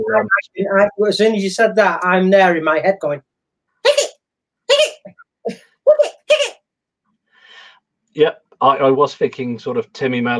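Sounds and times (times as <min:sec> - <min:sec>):
speech: 0:00.0 - 0:03.3, 0:05.5 - 0:06.0, 0:08.2 - 0:10.3
voice imitating a squeaky toy with short nasal squeaks: 0:03.8 - 0:05.3, 0:05.9 - 0:06.6.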